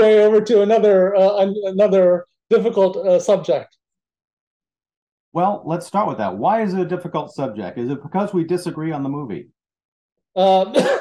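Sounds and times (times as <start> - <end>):
speech: 0.0 - 3.8, 5.3 - 9.6, 10.4 - 10.9
cough: 10.5 - 10.9.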